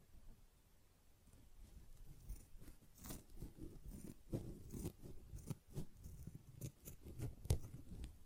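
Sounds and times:
short crisp sponge scratches or snips: 1.6 - 8.1.

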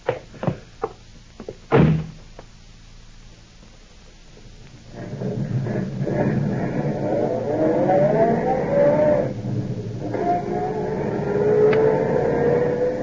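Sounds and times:
car engine starting and driving off: 4.8 - 13.0.

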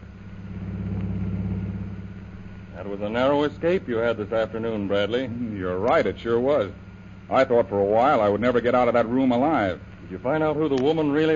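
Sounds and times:
car engine as a car drives through the city streets of Shanghai: 0.0 - 11.3
speech: 2.8 - 11.3.

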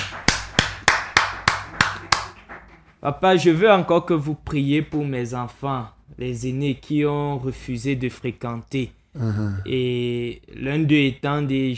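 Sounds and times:
congregation clapping in unison: 0.0 - 2.7
speech: 3.0 - 11.7.

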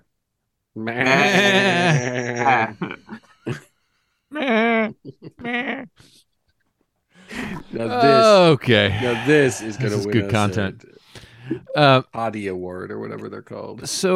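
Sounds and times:
goats bleating back and forth: 0.8 - 2.8
speech: 0.8 - 3.7, 5.0 - 6.3, 7.5 - 14.1.

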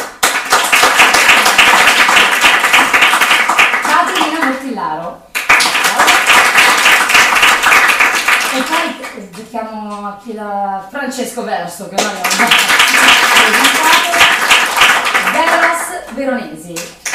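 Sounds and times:
audience applause: 0.0 - 4.5, 5.4 - 8.9, 12.2 - 15.8
speech: 9.5 - 14.2, 16.2 - 17.0.

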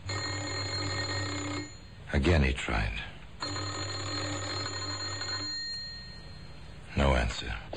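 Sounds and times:
house doorbell ringing: 0.1 - 2.0, 3.4 - 6.6
speech: 2.1 - 3.1, 7.0 - 7.7.

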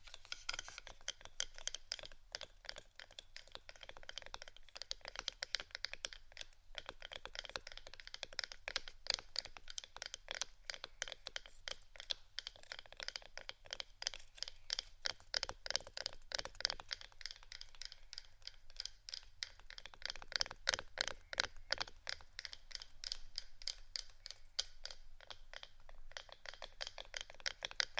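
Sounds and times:
fingers tapping on wooden objects: 0.2 - 27.9.

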